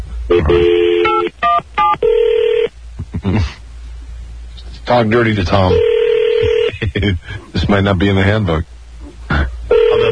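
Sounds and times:
electronic telephone tone: 0.3s - 2.7s, 5.7s - 6.7s, 9.7s - 10.1s
speech: 0.4s - 0.8s, 4.9s - 5.9s, 6.9s - 8.8s.

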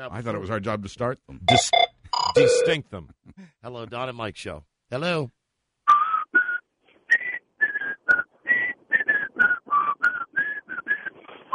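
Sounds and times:
speech: 0.0s - 5.4s
person whistling a bouncy TV theme tune: 5.9s - 11.5s.

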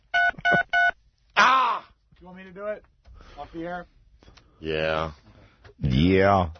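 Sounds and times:
touch-tone telephone dialing beeps: 0.1s - 1.0s
speech: 2.3s - 4.0s, 4.6s - 5.2s, 5.8s - 6.5s.

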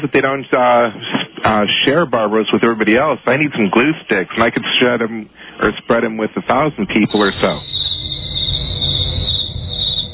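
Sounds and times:
speech: 0.0s - 7.7s
cricket chirping: 7.0s - 10.1s.

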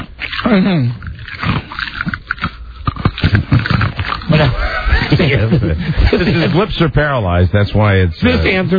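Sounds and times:
ice cubes crunching between teeth while chewing: 0.0s - 5.4s
speech: 0.5s - 1.5s, 5.1s - 8.7s
laughter: 4.3s - 6.9s.

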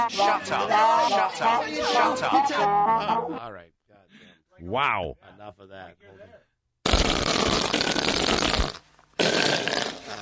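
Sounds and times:
speech: 0.0s - 6.4s
fart-like raspy blasts: 6.8s - 10.2s.

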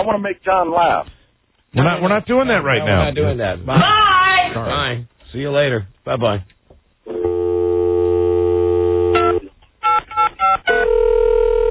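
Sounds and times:
speech: 0.0s - 6.5s
telephone line tone: 7.1s - 11.7s.

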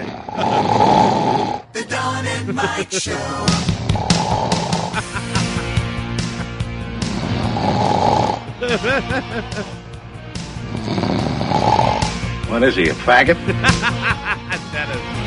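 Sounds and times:
man snoring loudly: 0.0s - 1.8s, 3.1s - 12.5s
laughter: 2.2s - 3.5s, 4.9s - 6.7s, 8.6s - 9.9s, 13.2s - 15.2s
speech: 2.4s - 4.4s, 8.6s - 9.8s, 12.5s - 15.1s.

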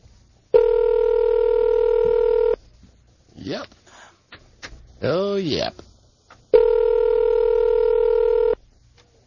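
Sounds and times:
telephone ring tone heard down the line: 0.6s - 2.6s, 6.6s - 8.6s
speech: 5.0s - 5.9s.

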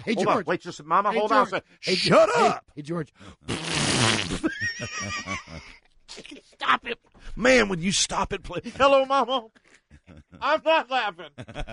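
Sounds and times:
speech: 0.0s - 11.7s
loud wet fart with sputtering flutter: 3.5s - 4.5s
laughter: 4.4s - 5.8s, 9.9s - 10.7s, 11.3s - 11.7s.

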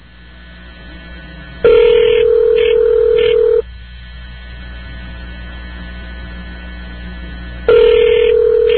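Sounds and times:
faint telephone line hum: 0.0s - 8.7s
telephone ringback tone over a telephone line: 1.7s - 3.6s, 7.7s - 8.7s.

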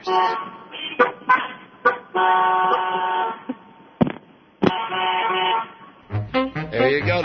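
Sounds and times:
speech: 0.0s - 1.4s, 2.1s - 3.0s, 6.7s - 7.2s
car horns honking at a traffic light: 0.0s - 3.7s, 4.6s - 7.2s
traffic noise: 0.0s - 7.2s.

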